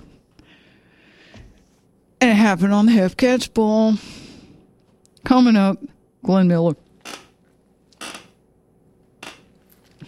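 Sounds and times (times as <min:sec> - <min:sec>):
speech: 0:02.2 - 0:04.2, 0:05.3 - 0:06.8
squeaky chair creaking: 0:07.0 - 0:08.4, 0:09.2 - 0:10.0.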